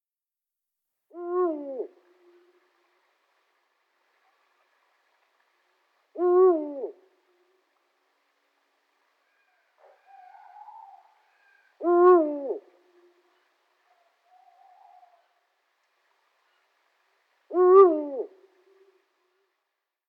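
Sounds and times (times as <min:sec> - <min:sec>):
eagle owl in a forest: 0:01.1 - 0:02.6, 0:06.2 - 0:07.1, 0:09.2 - 0:15.5, 0:17.5 - 0:19.0.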